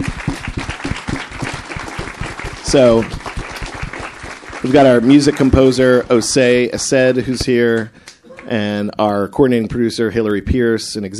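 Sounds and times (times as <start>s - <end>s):
audience applause for cast and crew members at an event: 0.0s - 8.7s
speech: 2.7s - 3.3s, 4.6s - 11.1s.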